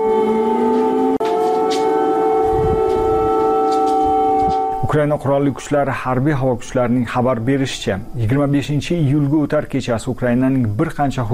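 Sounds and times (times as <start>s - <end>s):
air raid sirens wailing over Kyiv at night: 0.0s - 6.7s
speech: 4.9s - 11.3s.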